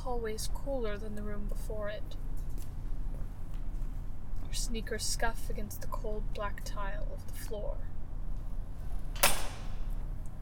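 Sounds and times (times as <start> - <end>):
steady low rumble of room tone: 0.0 - 10.3
speech: 0.1 - 2.3, 4.5 - 7.9
door closing with thud and click: 9.1 - 9.9.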